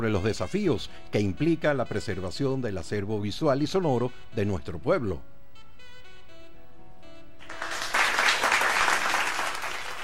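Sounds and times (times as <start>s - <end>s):
speech: 0.0s - 5.4s
audience applause at a panel discussion at an audiovisual archive: 7.4s - 10.0s.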